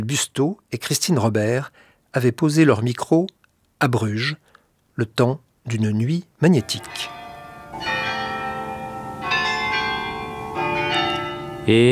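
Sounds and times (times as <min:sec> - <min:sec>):
speech: 0:00.0 - 0:07.2, 0:11.7 - 0:11.9
many church bells ringing in a dense overlapping peal in Bruges: 0:06.5 - 0:11.9.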